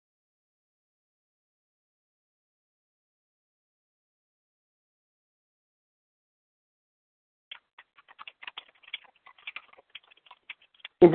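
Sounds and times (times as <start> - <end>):
rapid typing on a keyboard: 7.5 - 11.0.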